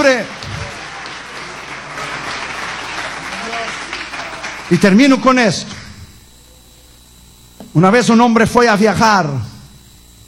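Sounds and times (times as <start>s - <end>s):
speech: 0.0s - 0.4s, 4.7s - 5.8s, 7.7s - 9.5s
congregation applauding: 0.0s - 5.1s.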